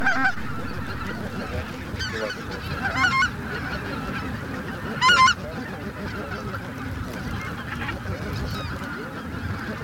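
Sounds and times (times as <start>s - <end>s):
flock of greater white-fronted geese honking in chorus: 0.0s - 9.8s.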